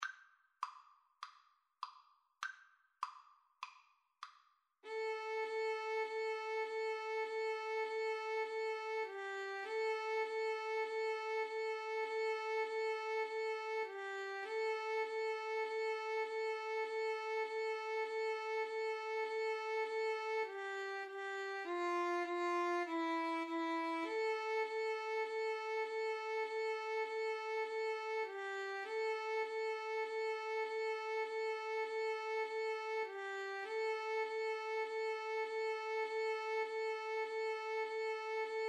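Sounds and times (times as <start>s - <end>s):
violin and viola duet: 4.9s - 38.6s.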